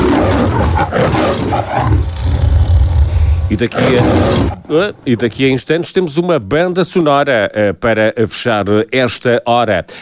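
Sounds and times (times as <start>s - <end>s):
lion roaring: 0.0s - 5.0s
speech: 3.5s - 10.0s.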